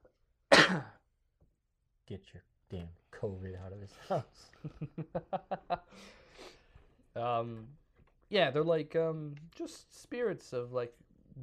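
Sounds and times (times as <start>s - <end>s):
throaty cough: 0.5s - 1.0s
speech: 0.7s - 0.9s, 2.1s - 6.6s, 7.2s - 11.4s
laughter: 4.0s - 6.1s.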